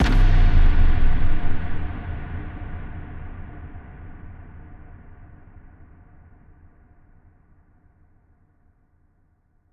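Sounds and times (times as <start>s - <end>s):
impact thud: 0.0s - 1.8s.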